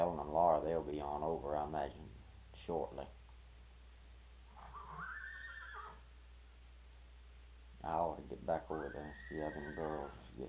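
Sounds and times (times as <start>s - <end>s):
speech: 0.0s - 3.2s, 7.8s - 10.4s
low steady rumble: 0.0s - 4.9s, 6.0s - 10.4s
spirited fresh horse neighing: 4.5s - 6.0s, 8.7s - 10.3s.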